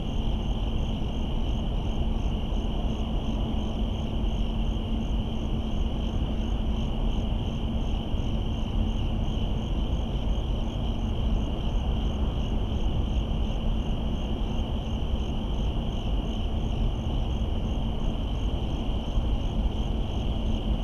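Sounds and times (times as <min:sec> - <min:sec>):
suburban night crickets chirping: 0:00.0 - 0:20.8.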